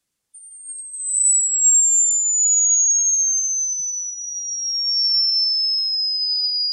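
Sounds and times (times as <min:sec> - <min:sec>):
simulated tinnitus high-pitched pure tone: 0:00.4 - 0:06.7.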